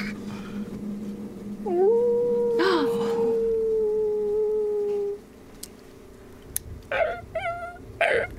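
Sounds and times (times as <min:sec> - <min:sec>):
wolf howling: 0:01.6 - 0:05.2, 0:06.9 - 0:08.3
wolf high whimpering yelps: 0:06.9 - 0:08.3.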